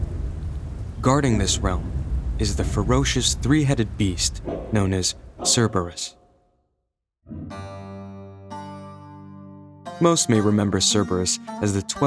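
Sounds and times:
heavy rain: 0:00.0 - 0:05.6
low rumbling thunder: 0:00.0 - 0:06.0
speech: 0:01.0 - 0:06.2, 0:10.0 - 0:12.0.

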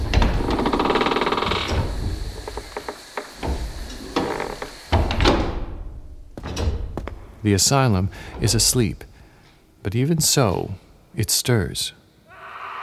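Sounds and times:
knocks and thuds: 0:00.0 - 0:09.8
vast heavy old wooden asylum doors grinding and creaking open: 0:00.0 - 0:11.2
speech: 0:07.4 - 0:09.1, 0:09.8 - 0:12.0.

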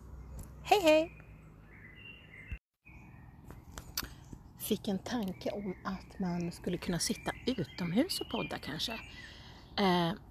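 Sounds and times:
birds chirping and twittering in woodland: 0:00.0 - 0:10.2
speech: 0:00.7 - 0:01.2, 0:04.6 - 0:10.2.

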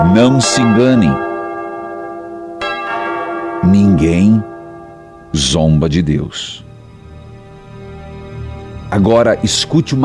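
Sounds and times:
speech: 0:00.0 - 0:01.3, 0:03.6 - 0:04.5, 0:05.3 - 0:06.7, 0:08.9 - 0:10.0
resonant bell ringing: 0:00.0 - 0:07.5.

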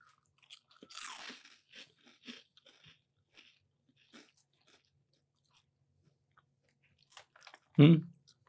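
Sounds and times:
crunching and chewing on a lightly seasoned Thai snack chip with a hint of shrimp: 0:00.0 - 0:08.4.

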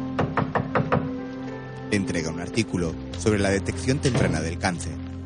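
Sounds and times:
knuckles knocking on an executive's office door: 0:00.2 - 0:01.2
speech: 0:01.9 - 0:05.0.

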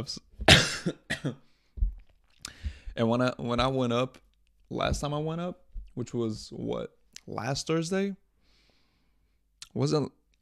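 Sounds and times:
speech: 0:00.0 - 0:01.5, 0:03.0 - 0:08.2, 0:09.7 - 0:10.3
person coughing: 0:00.4 - 0:01.4.

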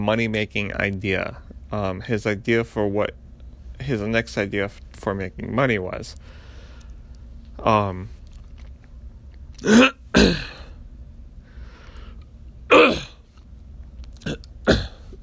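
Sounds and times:
speech: 0:00.0 - 0:03.2, 0:03.8 - 0:06.4, 0:07.6 - 0:08.2, 0:09.6 - 0:10.5
person clearing phlegm from the throat while lying in bed: 0:09.6 - 0:10.8, 0:12.7 - 0:13.2, 0:14.2 - 0:15.2
voiced grunt: 0:12.7 - 0:13.2.

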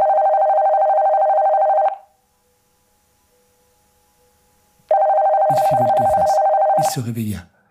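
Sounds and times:
telephone ringing with an electronic trill: 0:00.0 - 0:02.1, 0:04.9 - 0:07.1
speech: 0:07.0 - 0:07.5.

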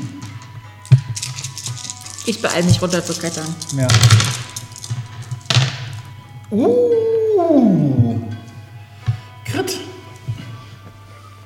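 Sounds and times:
dice rattling and clattering across a surface: 0:00.9 - 0:06.0
speech: 0:02.3 - 0:04.5, 0:06.5 - 0:08.0.

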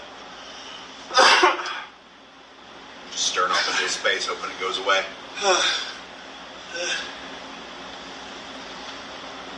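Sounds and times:
person coughing harshly: 0:01.1 - 0:01.9
speech: 0:04.0 - 0:05.9, 0:06.7 - 0:07.2.

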